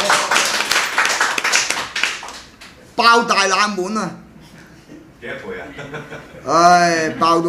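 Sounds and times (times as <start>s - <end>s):
small crowd audience applause: 0.0s - 2.6s
speech: 3.0s - 4.2s, 5.2s - 7.4s
laughter: 4.5s - 7.4s.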